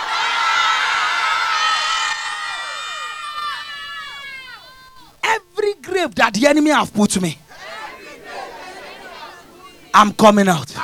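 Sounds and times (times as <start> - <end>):
large audience screaming and cheering: 0.0 - 5.1
speech: 6.0 - 7.4, 10.0 - 10.8.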